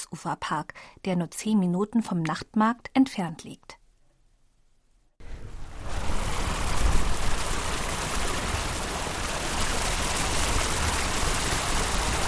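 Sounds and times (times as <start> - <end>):
speech: 0.1 - 3.8
narrow stream flowing, rushing and babbling: 5.3 - 12.2.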